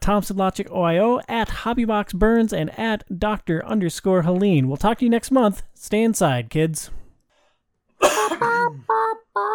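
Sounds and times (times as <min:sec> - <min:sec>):
speech: 0:00.0 - 0:07.0, 0:08.0 - 0:09.5
harsh throaty coughing off-mic: 0:08.0 - 0:08.9.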